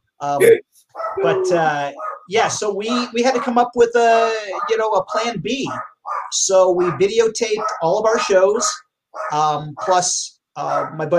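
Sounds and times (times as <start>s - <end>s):
speech: 0.2s - 11.1s
small 10-pound rat terrier barking: 1.0s - 1.4s, 2.0s - 2.3s, 4.5s - 7.0s, 7.6s - 10.0s, 10.7s - 11.0s.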